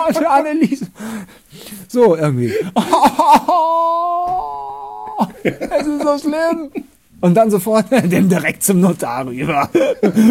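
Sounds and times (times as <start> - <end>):
speech: 0.0 - 4.6, 5.2 - 10.2
laughter: 2.6 - 6.9, 9.4 - 10.2
voice imitating crying at a funeral: 2.8 - 6.9.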